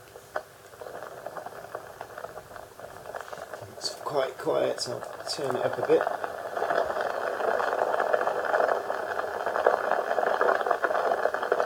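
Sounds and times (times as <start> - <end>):
dense fizz of bubbles popping: 0.7 - 11.6
speech: 4.1 - 6.2.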